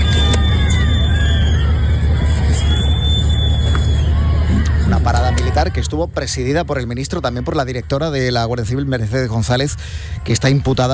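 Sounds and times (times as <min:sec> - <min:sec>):
outdoor crowd whistling in protest at a parade in Cádiz, Spain: 0:00.0 - 0:05.6
outdoor crowd shouting in protest at a parade in Cádiz, Spain: 0:00.0 - 0:07.6
low rumbling noise: 0:00.0 - 0:10.9
speech: 0:05.6 - 0:10.9.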